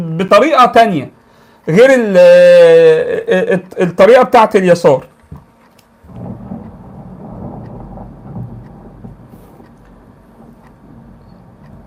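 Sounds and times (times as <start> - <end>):
speech: 0.0 - 5.1
thunder rumbling during a storm: 6.0 - 11.8.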